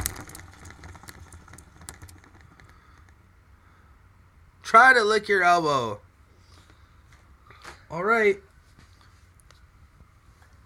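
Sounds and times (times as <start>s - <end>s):
spinner spun in front of the microphone ticking: 0.0s - 3.2s
speech: 4.7s - 6.0s, 7.9s - 8.5s.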